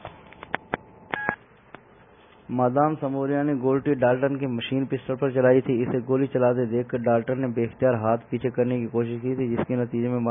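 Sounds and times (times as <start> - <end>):
cell phone keypad tones as a number is dialed: 1.2 - 1.4
speech: 2.5 - 10.3.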